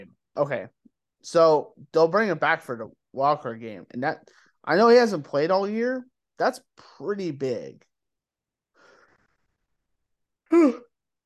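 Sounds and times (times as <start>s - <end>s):
speech: 0.0s - 7.9s, 10.5s - 10.9s
person yawning: 10.5s - 11.0s.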